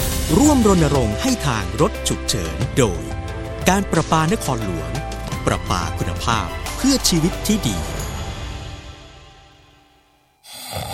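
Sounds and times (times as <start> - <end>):
speech: 0.3 - 8.0
person snoring during sleep: 10.4 - 10.9.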